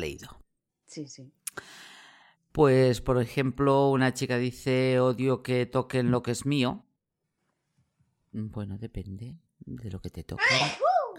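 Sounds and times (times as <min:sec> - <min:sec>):
speech: 0:00.0 - 0:01.9, 0:02.6 - 0:06.8, 0:08.3 - 0:11.0
single loud sneeze: 0:10.4 - 0:10.9.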